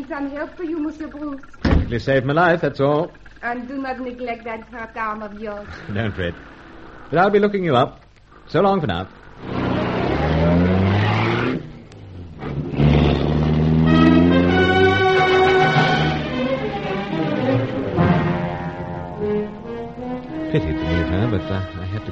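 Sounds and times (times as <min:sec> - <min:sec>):
speech: 0:00.0 - 0:09.5, 0:20.6 - 0:22.1
laughter: 0:05.7 - 0:06.4, 0:20.4 - 0:22.1
sports car engine revving through the gears: 0:09.1 - 0:22.1.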